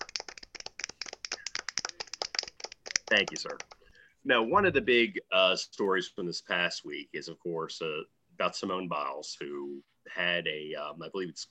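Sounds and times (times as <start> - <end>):
soft golf clap: 0.0 - 3.9
speech: 3.1 - 11.4.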